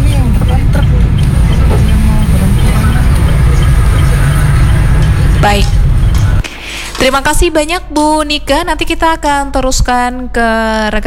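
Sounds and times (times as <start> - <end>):
heavy trailer truck engine rumbling: 0.0 - 7.9
speech: 7.1 - 11.0.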